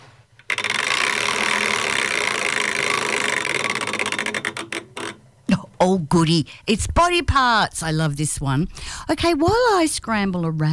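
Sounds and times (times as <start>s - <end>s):
prize wheel being spun: 0.4s - 5.3s
speech: 5.8s - 10.7s.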